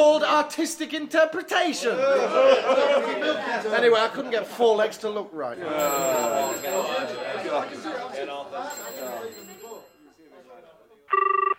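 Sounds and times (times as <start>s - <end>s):
speech: 0.0s - 9.5s
laughter: 1.8s - 4.4s, 5.6s - 9.6s
telephone ringing with an electronic trill: 5.7s - 7.7s, 8.6s - 10.0s, 11.1s - 11.5s.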